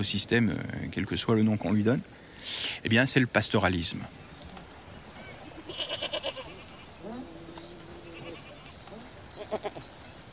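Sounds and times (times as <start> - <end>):
speech: 0.0 - 4.3
soft outdoor background: 0.0 - 10.3
goats bleating: 5.4 - 9.8.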